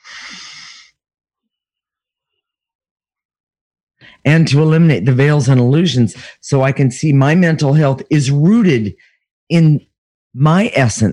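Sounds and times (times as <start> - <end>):
deep breath during a guided healing session: 0.0 - 1.0
speech: 4.2 - 11.1.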